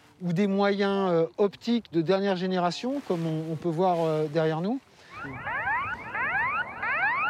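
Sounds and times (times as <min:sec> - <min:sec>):
speech: 0:00.2 - 0:05.6
electronic bird-scaring alarm whoops at airport runway: 0:05.1 - 0:07.2.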